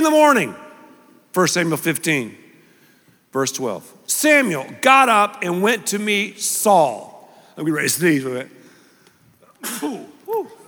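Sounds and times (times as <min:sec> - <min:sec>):
speech: 0:00.0 - 0:00.6, 0:01.3 - 0:02.4, 0:03.3 - 0:08.6, 0:09.6 - 0:10.6
human sneeze: 0:09.6 - 0:10.2.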